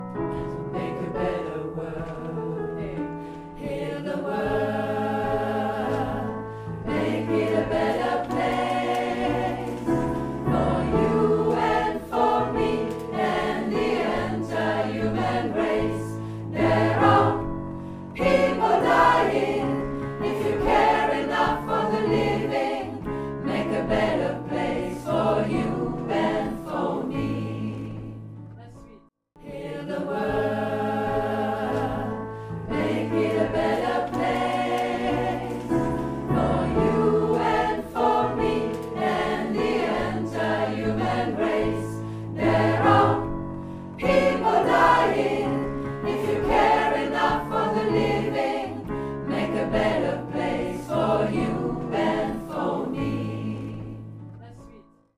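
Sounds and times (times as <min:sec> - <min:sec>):
group singing a refrain: 0:00.4 - 0:17.5, 0:18.2 - 0:28.2, 0:29.4 - 0:54.1.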